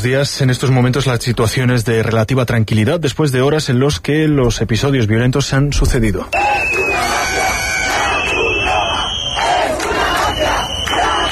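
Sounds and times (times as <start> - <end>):
speech: 0.0 - 7.4
crowd of protesters chanting slogans: 6.4 - 11.3.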